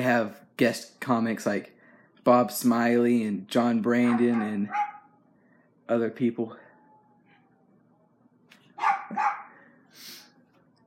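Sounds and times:
speech: 0.0s - 4.9s, 5.9s - 6.6s, 8.8s - 9.3s
faint low hum: 0.0s - 10.8s
dog barks: 4.0s - 5.2s, 8.7s - 9.6s.

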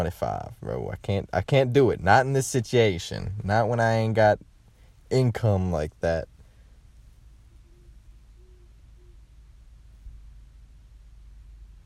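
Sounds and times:
speech: 0.0s - 4.5s, 5.1s - 6.3s
steady rumbling hiss heard inside a car: 0.0s - 11.8s
owl hooting heard from inside a car with the windows up: 7.4s - 9.4s.

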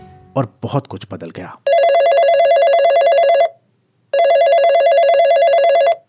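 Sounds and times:
speech: 0.4s - 1.7s
old-style telephone bell ringing: 1.7s - 3.5s, 4.2s - 6.0s.

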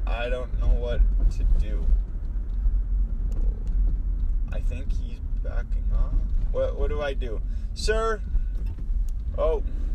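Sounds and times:
heavy vehicle engine rumbling: 0.0s - 9.9s
speech: 0.1s - 2.1s, 4.5s - 8.4s, 9.4s - 9.8s.

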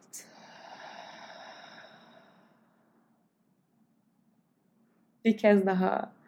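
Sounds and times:
long deep exhale through an open mouth during a guided breathing exercise: 0.2s - 2.7s
speech: 5.2s - 6.2s.

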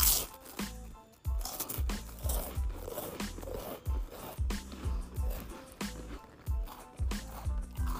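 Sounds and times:
chewing buttery Ritz crackers: 0.0s - 7.9s.

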